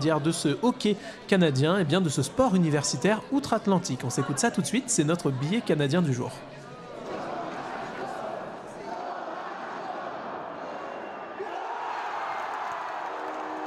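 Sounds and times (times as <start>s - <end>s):
speech: 0.0s - 6.6s
ice hockey fans cheering a goal in an arena: 7.0s - 13.6s.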